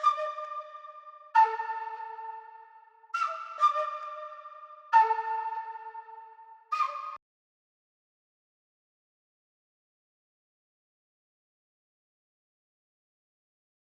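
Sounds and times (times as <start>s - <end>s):
trap flute melody loop in D minor at 134 BPM: 0.0s - 7.2s.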